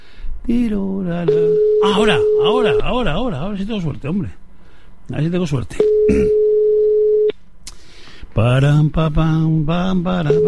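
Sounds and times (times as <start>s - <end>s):
speech: 0.5s - 4.4s, 5.1s - 6.4s, 8.4s - 10.4s
odd steady telephone line tone of an unanswered call: 1.3s - 3.0s, 5.8s - 7.3s, 10.3s - 10.4s.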